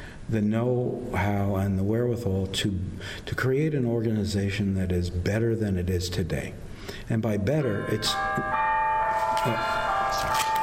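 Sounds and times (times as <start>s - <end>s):
speech: 0.3s - 8.6s, 9.4s - 9.8s
church bells ringing: 7.4s - 10.6s.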